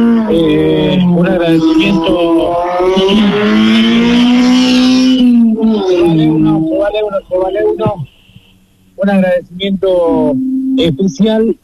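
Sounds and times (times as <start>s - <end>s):
Fiat 147 rally car engine accelerating away: 0.0s - 8.0s
speech: 1.2s - 4.0s, 6.9s - 8.1s, 9.0s - 11.6s.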